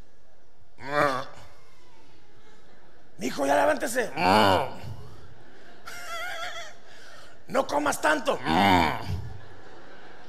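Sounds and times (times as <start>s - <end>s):
person imitating a discontented groan: 0.8s - 1.4s, 4.2s - 5.0s, 8.4s - 9.2s
laughter: 2.2s - 10.2s
speech: 3.4s - 4.8s, 7.7s - 9.2s.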